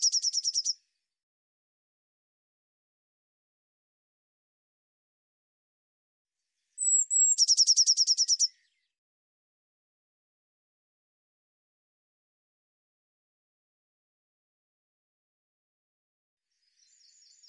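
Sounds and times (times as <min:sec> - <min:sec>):
Eurasian blue tit singing: 0:00.0 - 0:00.8, 0:06.8 - 0:08.6.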